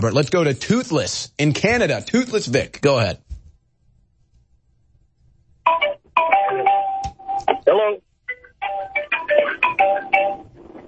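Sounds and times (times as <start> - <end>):
speech: 0.0 - 3.2, 7.7 - 8.0
Apple phone ringtone melody: 5.7 - 7.4, 8.3 - 10.4.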